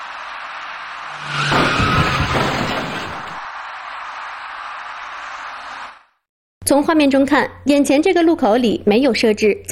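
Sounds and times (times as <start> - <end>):
car tire squeal: 0.0 - 3.5
dark car crashing into a cyclist: 0.9 - 3.5
speech: 6.7 - 9.7.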